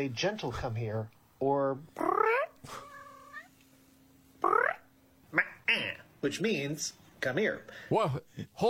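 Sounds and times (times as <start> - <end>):
speech: 0.0 - 2.9, 5.3 - 8.6
man imitating cat meows: 2.0 - 3.5, 4.4 - 6.0.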